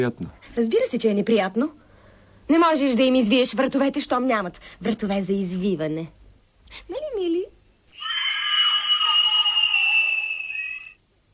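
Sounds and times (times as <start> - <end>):
speech: 0.0 - 1.8, 2.5 - 7.5
loud high-pitched scream: 7.9 - 11.0.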